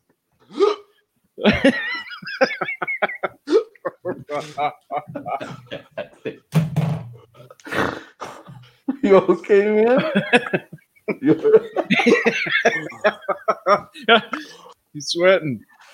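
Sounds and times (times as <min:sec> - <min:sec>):
person hiccuping: 0:00.5 - 0:00.9
speech: 0:01.4 - 0:01.9, 0:04.4 - 0:06.4, 0:09.1 - 0:10.7, 0:13.7 - 0:15.7
people laughing: 0:01.4 - 0:06.5, 0:08.9 - 0:14.6.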